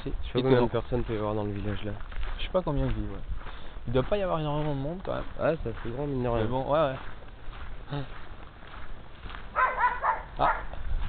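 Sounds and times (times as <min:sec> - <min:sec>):
speech: 0:00.0 - 0:07.2, 0:07.9 - 0:08.2, 0:10.4 - 0:10.6
footsteps: 0:00.0 - 0:11.0
outdoor noise: 0:00.0 - 0:11.0
dog barking: 0:09.5 - 0:10.8.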